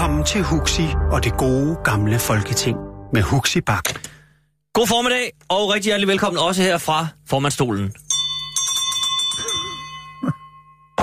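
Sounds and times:
speech: 0.1s - 4.1s, 4.8s - 8.0s
hand bell rung from the chair to open a meeting: 8.0s - 11.0s.

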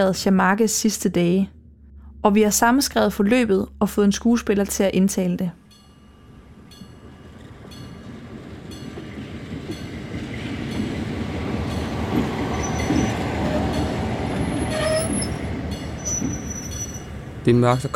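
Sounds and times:
speech: 0.0s - 1.6s, 2.2s - 5.6s, 17.5s - 17.9s
train rumbling at a station platform: 2.1s - 17.9s
metallic train wheel squeals: 12.5s - 17.9s.

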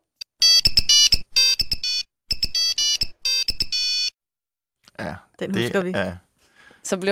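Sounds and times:
Nokia 3210 shrill monophonic ringtone: 0.4s - 4.2s
speech: 5.0s - 7.1s.

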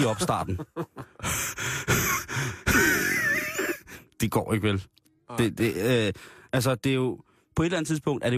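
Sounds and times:
speech: 0.0s - 1.7s, 4.2s - 8.3s
heavy breathing close to microphone: 1.0s - 3.0s.

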